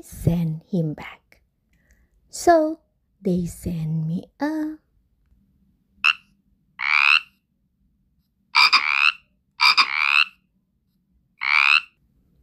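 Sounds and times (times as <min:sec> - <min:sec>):
speech: 0:00.0 - 0:01.2, 0:02.3 - 0:04.8
frog croaking: 0:06.0 - 0:07.4, 0:08.5 - 0:10.4, 0:11.4 - 0:12.0.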